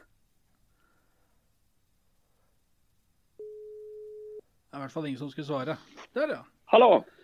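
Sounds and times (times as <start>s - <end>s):
telephone ringback tone during a call: 3.4s - 4.4s
speech: 4.7s - 7.2s.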